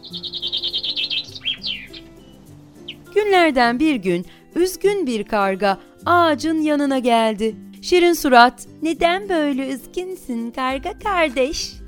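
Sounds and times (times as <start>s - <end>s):
sparrows chirping while feeding on a fig tree: 0.0s - 4.7s
speech: 3.2s - 11.8s.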